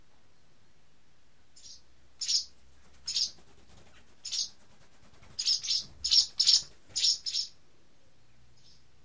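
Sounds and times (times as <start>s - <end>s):
barn swallow short high chirping notes: 1.6s - 3.4s, 4.2s - 4.6s, 5.3s - 7.6s, 8.2s - 8.9s.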